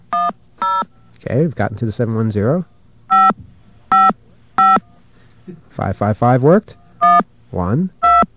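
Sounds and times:
speech: 0:01.2 - 0:02.8, 0:05.5 - 0:08.3
touch-tone telephone dialing beeps: 0:03.1 - 0:04.8, 0:07.0 - 0:07.2, 0:08.0 - 0:08.3.

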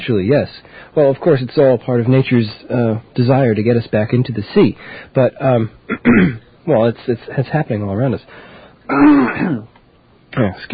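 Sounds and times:
speech: 0:00.0 - 0:09.7, 0:10.4 - 0:10.7
throat-clearing cough: 0:05.9 - 0:06.4, 0:08.9 - 0:09.7.

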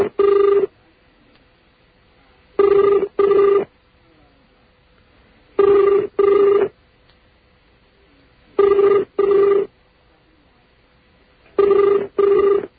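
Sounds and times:
telephone ringing with warbling tone: 0:00.0 - 0:00.7, 0:02.6 - 0:03.7, 0:05.6 - 0:06.7, 0:08.6 - 0:09.7, 0:11.6 - 0:12.7.

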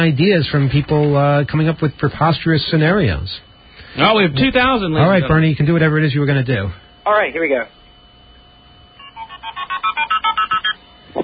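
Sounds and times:
speech: 0:00.0 - 0:07.8
multi-frequency telephone signaling tones dialing a pledge phone number: 0:09.0 - 0:10.8.

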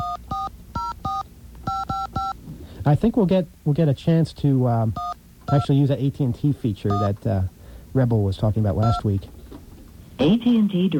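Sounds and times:
touch-tone telephone dialing beeps: 0:00.0 - 0:02.4, 0:05.0 - 0:05.7, 0:06.9 - 0:07.1, 0:08.8 - 0:09.0
speech: 0:02.8 - 0:09.4, 0:10.2 - 0:10.9.

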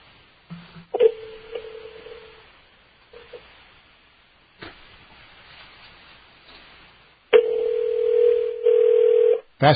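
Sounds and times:
phone line tones from dialing an old toll-free number: 0:01.0 - 0:02.4, 0:07.4 - 0:09.5.

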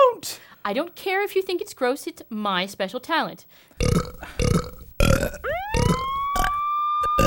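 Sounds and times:
speech: 0:00.2 - 0:04.7
person belching a short melody in rhythmic burps: 0:03.8 - 0:07.2
siren wailing upward: 0:05.4 - 0:07.2.

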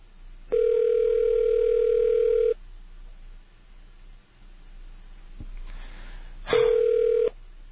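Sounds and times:
telephone ringback tone on a customer service call: 0:00.5 - 0:02.6, 0:06.5 - 0:07.3.

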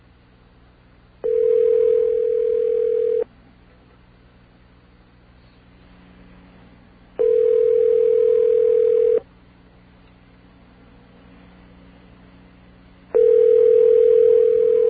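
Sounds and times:
faint low hum: 0:00.0 - 0:14.8
phone line ringing with steady electronic tones: 0:01.2 - 0:03.3, 0:07.2 - 0:09.2, 0:13.1 - 0:14.8.

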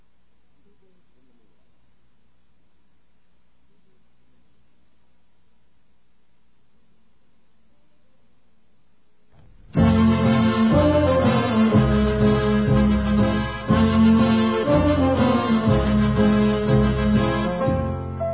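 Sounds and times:
recorded band playing a brassy tune: 0:09.7 - 0:18.2.

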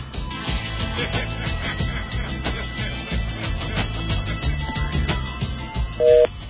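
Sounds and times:
laughter: 0:00.7 - 0:05.1
electronic call signal: 0:06.0 - 0:06.3
telephone keypad dialing tones: 0:06.0 - 0:06.3.

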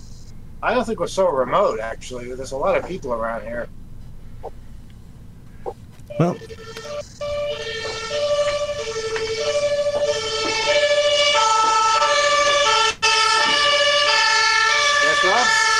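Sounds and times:
low rumble of road traffic: 0:00.0 - 0:15.7
speech: 0:00.6 - 0:03.7, 0:06.2 - 0:07.8
non-standard emergency siren wailing in a two-tone pattern: 0:06.1 - 0:15.7.

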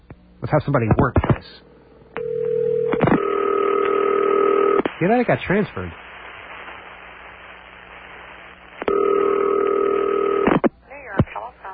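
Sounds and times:
speech: 0:00.4 - 0:01.7, 0:05.0 - 0:06.0
telephone handset steady electronic tone: 0:02.2 - 0:04.8, 0:08.9 - 0:10.5.

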